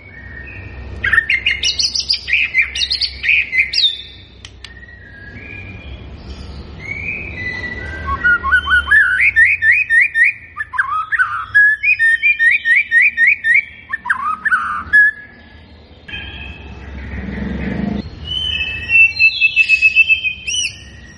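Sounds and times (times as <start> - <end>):
White-rumped shama song: 0.0 - 21.1.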